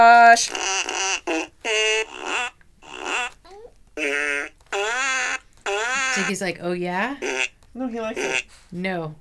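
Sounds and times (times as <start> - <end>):
speech: 0.0 - 1.1, 6.2 - 9.1
toy fart piano fart noises: 0.5 - 6.3.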